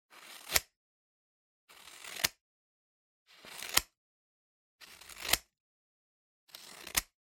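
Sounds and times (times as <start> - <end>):
scissors cutting paper: 0.2 - 0.8, 1.7 - 2.4, 3.3 - 4.0, 4.8 - 5.5, 6.5 - 7.2.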